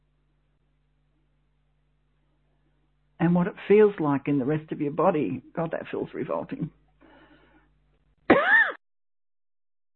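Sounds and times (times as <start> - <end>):
speech: 3.2 - 6.8
single short cough: 8.3 - 8.8.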